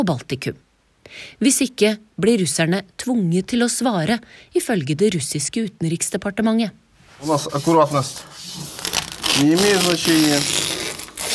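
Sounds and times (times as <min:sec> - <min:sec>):
speech: 0:00.0 - 0:10.8
sticky tape tearing and pressed onto an apartment window in Kyiv: 0:07.2 - 0:11.3.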